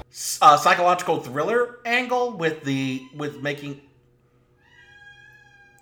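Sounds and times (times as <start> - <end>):
speech: 0.4 - 3.9
cat meowing: 4.6 - 5.8.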